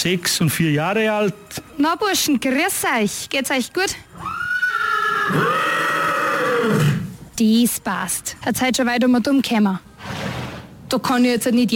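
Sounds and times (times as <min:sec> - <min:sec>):
speech: 0:00.0 - 0:04.4, 0:05.3 - 0:05.5, 0:07.4 - 0:09.9, 0:10.9 - 0:11.7
tiger-spotted brewery carriage stallion whinnying: 0:04.1 - 0:07.2, 0:10.0 - 0:10.7.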